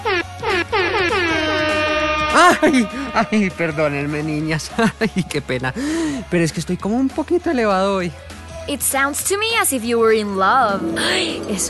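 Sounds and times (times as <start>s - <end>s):
loud blaring air horn blasts: 0.0s - 4.1s
speech: 2.4s - 11.6s.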